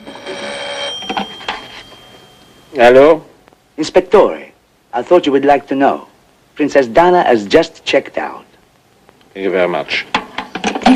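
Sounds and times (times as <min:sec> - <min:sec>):
telephone ringing in a hotel room: 0:00.0 - 0:03.0
speech: 0:02.8 - 0:08.5, 0:09.4 - 0:10.2.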